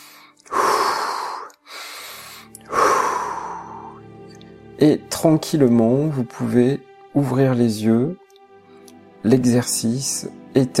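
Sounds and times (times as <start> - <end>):
deep breaths at the end of a guided relaxation exercise: 0.0 - 4.2
speech: 4.8 - 8.2, 9.2 - 10.7.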